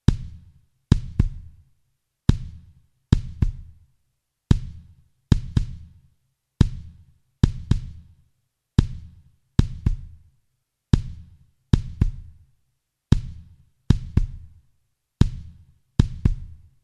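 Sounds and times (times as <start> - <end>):
compressed kick drum: 0.0 - 1.7, 2.3 - 3.9, 4.5 - 6.0, 6.6 - 8.2, 8.8 - 10.3, 10.9 - 12.5, 13.1 - 14.6, 15.2 - 16.8.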